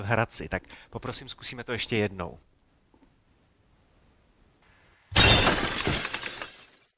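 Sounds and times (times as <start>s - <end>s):
speech: 0.0s - 2.5s
car taillight glass shattering on impact against tree: 5.1s - 6.9s
glass fragments scattering: 5.1s - 6.9s.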